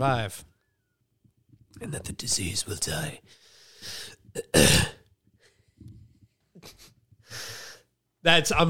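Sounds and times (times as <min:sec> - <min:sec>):
speech: 0:00.0 - 0:00.5, 0:01.8 - 0:05.0, 0:08.2 - 0:08.6
short raspy breaths: 0:03.2 - 0:04.2, 0:06.6 - 0:08.0
harsh coughing: 0:04.3 - 0:05.1
throat clearing: 0:04.4 - 0:05.0.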